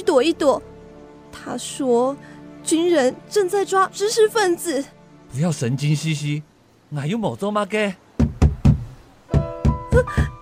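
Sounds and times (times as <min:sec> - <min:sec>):
speech: 0:00.1 - 0:00.7, 0:01.4 - 0:08.0, 0:10.0 - 0:10.3
loud heavy knocking on a door: 0:08.2 - 0:10.4.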